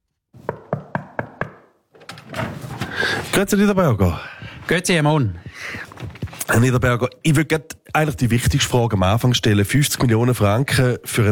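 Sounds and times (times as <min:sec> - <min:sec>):
knocking on the door of a town official in Kreuzlingen: 0:00.4 - 0:01.8
speech: 0:03.4 - 0:11.3.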